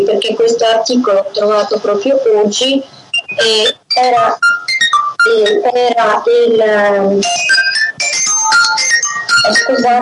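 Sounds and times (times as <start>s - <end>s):
speech: 0.1s - 4.6s, 5.2s - 7.6s, 9.4s - 10.0s
phone ringtone for an incoming call, bright electronic melody: 3.1s - 5.7s, 7.2s - 10.0s.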